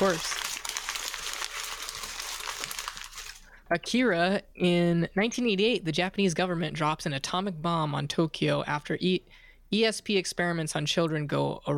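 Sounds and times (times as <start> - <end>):
speech: 0.0 - 0.4, 3.7 - 11.7
paper being shuffled: 0.0 - 3.5.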